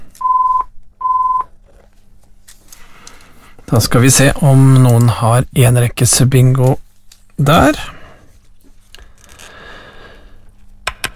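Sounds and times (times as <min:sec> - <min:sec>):
electronic telephone ringing: 0:00.2 - 0:01.5
speech: 0:03.7 - 0:06.8, 0:07.4 - 0:08.0.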